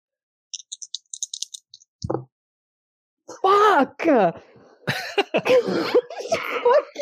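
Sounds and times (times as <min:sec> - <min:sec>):
dice rattling and clattering: 0:00.6 - 0:01.8
speech: 0:02.1 - 0:02.3, 0:03.3 - 0:07.0
laughter: 0:04.9 - 0:06.8.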